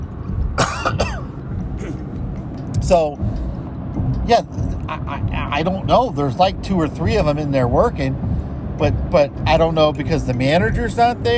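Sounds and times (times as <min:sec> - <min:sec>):
low rumbling background: 0:00.0 - 0:11.3
person coughing: 0:00.6 - 0:02.0
speech: 0:02.8 - 0:03.4, 0:04.3 - 0:08.2, 0:08.8 - 0:11.3.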